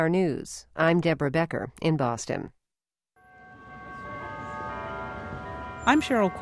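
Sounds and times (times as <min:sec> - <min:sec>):
speech: 0:00.0 - 0:02.6, 0:05.8 - 0:06.4
church bells ringing: 0:03.2 - 0:06.4.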